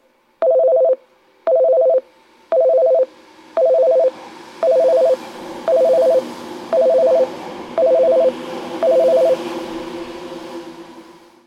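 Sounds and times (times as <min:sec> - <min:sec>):
express train passing station: 0:00.1 - 0:11.4.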